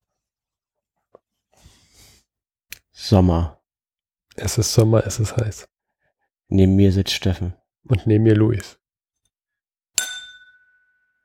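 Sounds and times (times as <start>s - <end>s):
speech: 3.1s - 3.6s, 4.4s - 5.7s, 6.5s - 8.8s
glasses tapping together in a toast: 10.0s - 11.1s.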